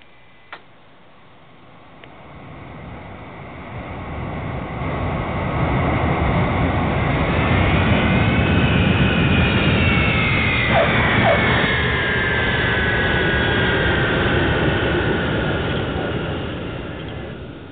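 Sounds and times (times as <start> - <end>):
jet airliner engine roar while landing: 1.4 - 17.7.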